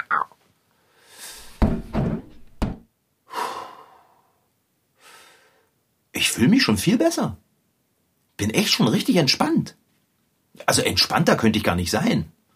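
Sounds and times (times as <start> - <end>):
slow deep breathing close to the mic: 0.8 - 1.7, 3.3 - 5.7
soft thumps: 1.4 - 2.9
speech: 6.4 - 7.5, 8.4 - 9.8, 10.6 - 12.3.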